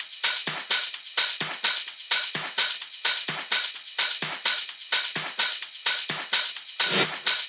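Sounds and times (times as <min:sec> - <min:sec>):
classic drum kit beat: 0:00.0 - 0:07.4.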